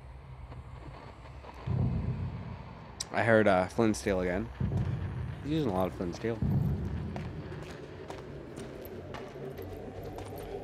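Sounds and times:
droning crackling video game ambience: 0:00.0 - 0:10.6
speech: 0:03.1 - 0:06.6
running footsteps on deepslate and soul sand in a video game: 0:04.6 - 0:10.6.

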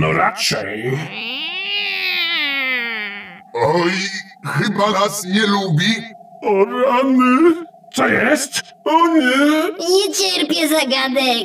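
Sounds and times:
speech: 0:00.0 - 0:01.4, 0:03.6 - 0:11.4
long drawn-out cat meow: 0:01.0 - 0:03.6.

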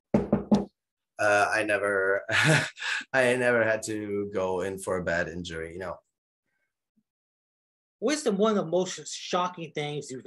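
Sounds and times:
knuckles knocking on wood: 0:00.1 - 0:00.7
speech: 0:01.2 - 0:06.0, 0:08.0 - 0:10.2.

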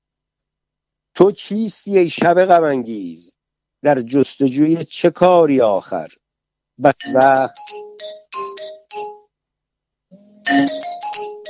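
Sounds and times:
speech: 0:01.2 - 0:06.2, 0:06.8 - 0:07.7
loud electronic phone ringtone: 0:07.0 - 0:09.3, 0:10.1 - 0:11.4.

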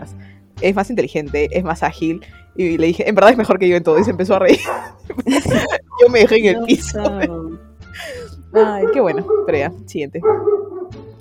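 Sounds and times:
speech: 0:00.1 - 0:07.4, 0:08.0 - 0:11.0
dogs barking: 0:03.9 - 0:06.4, 0:08.6 - 0:11.1
laughter: 0:04.5 - 0:08.3.

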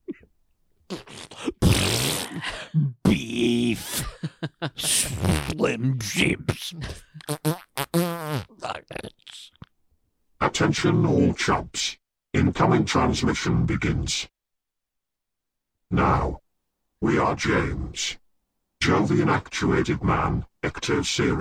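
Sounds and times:
fart noises: 0:00.9 - 0:02.4, 0:04.9 - 0:05.6, 0:07.2 - 0:08.6
laughter: 0:03.7 - 0:05.2
speech: 0:04.8 - 0:07.4, 0:10.7 - 0:14.4, 0:15.9 - 0:16.4, 0:17.0 - 0:18.2, 0:18.8 - 0:21.3.

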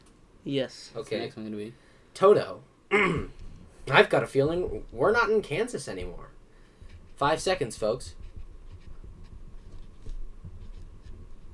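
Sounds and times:
speech: 0:00.4 - 0:06.3, 0:07.2 - 0:08.2
pencils scratching across paper: 0:07.1 - 0:11.5.

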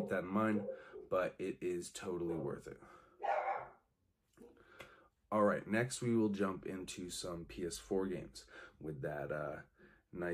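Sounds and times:
dogs barking in the background: 0:00.0 - 0:01.1, 0:03.2 - 0:03.7
speech: 0:00.0 - 0:03.4, 0:05.3 - 0:10.3.

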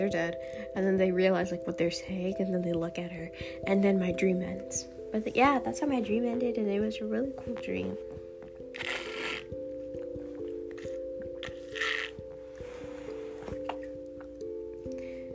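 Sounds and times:
speech: 0:00.0 - 0:08.1, 0:08.7 - 0:09.1
person drinking water with wet gulping and swallowing: 0:08.8 - 0:12.2.

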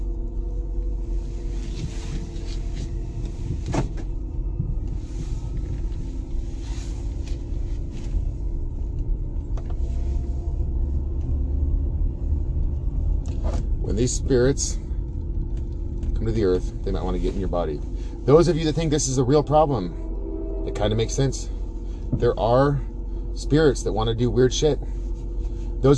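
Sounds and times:
car engine rumble while driving: 0:00.0 - 0:25.9
road noise while driving: 0:00.0 - 0:25.9
speech: 0:14.0 - 0:14.8, 0:16.2 - 0:20.0, 0:20.8 - 0:21.5, 0:22.1 - 0:25.0.

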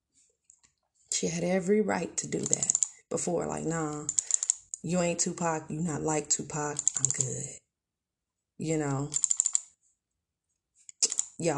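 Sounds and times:
speech: 0:01.2 - 0:04.2, 0:04.8 - 0:07.6, 0:08.6 - 0:09.3, 0:11.4 - 0:11.5
computer keyboard clicks at work: 0:02.4 - 0:02.9, 0:04.0 - 0:04.8, 0:06.8 - 0:07.3, 0:09.1 - 0:09.6, 0:11.0 - 0:11.4.

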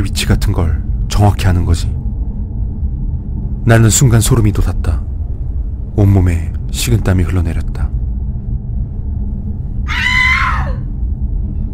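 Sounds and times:
steady low rumbling ambience: 0:00.0 - 0:11.7
speech: 0:01.2 - 0:02.0, 0:03.6 - 0:05.0, 0:06.0 - 0:07.9
high-pitched scream from upstairs in a mansion: 0:09.8 - 0:10.9.

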